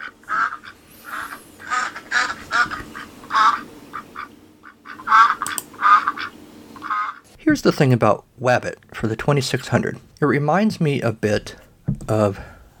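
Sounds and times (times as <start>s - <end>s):
duck quacking: 0.0s - 7.2s
speech: 7.5s - 12.5s.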